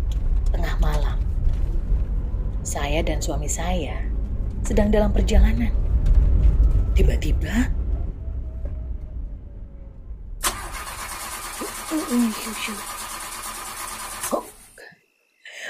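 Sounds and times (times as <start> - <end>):
car engine rumbling low: 0.0 - 14.8
speech: 2.7 - 5.8, 7.0 - 7.8, 12.0 - 12.9
car engine grinding and straining to turn over: 10.4 - 14.8.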